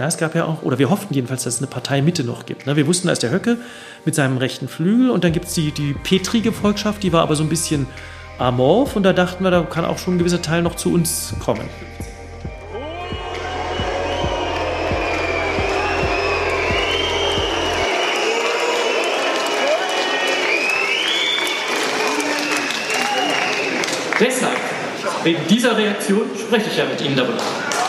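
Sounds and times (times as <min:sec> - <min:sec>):
speech: 0:00.0 - 0:12.0, 0:25.2 - 0:27.6
low rhythmic thumping: 0:10.2 - 0:17.9
large indoor party convention crowd shouting and murmuring: 0:12.4 - 0:25.5
shrill whistles from party convention crowd: 0:12.7 - 0:24.1.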